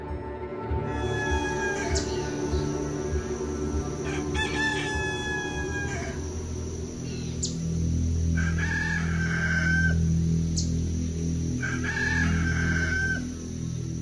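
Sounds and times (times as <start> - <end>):
rooster crowing: 0.9 - 7.4, 8.3 - 10.2, 11.5 - 13.5
steady low rumble: 1.2 - 14.0.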